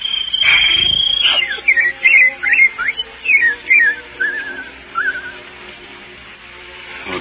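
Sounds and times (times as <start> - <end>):
person whistling an imitation of birdsong: 0.0 - 5.4.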